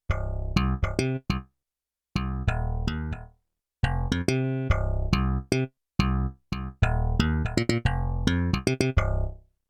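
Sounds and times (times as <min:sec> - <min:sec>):
sampled slap bass notes: 0:00.1 - 0:01.4, 0:02.2 - 0:09.4.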